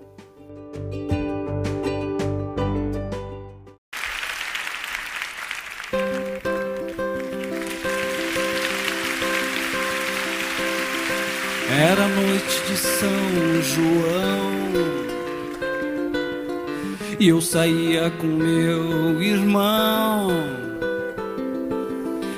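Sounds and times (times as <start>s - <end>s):
Brazilian festa junina song with plucked and struck notes: 0.0s - 3.8s, 6.0s - 22.3s
people clapping: 3.9s - 16.8s
crowd noise: 4.0s - 16.8s
speech: 12.8s - 15.0s, 17.2s - 20.7s.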